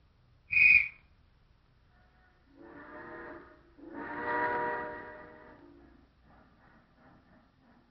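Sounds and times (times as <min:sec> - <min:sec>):
long wailing train whistle blasts signalling approach: 0:00.5 - 0:01.0, 0:02.1 - 0:05.7
short shrill train whistle chirp: 0:00.5 - 0:01.1.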